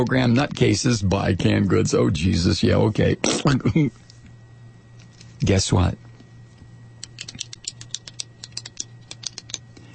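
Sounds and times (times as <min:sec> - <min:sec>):
speech: 0:00.0 - 0:04.0, 0:05.4 - 0:06.0
steady low electrical hum: 0:00.0 - 0:09.9
pen clicking: 0:07.0 - 0:09.6.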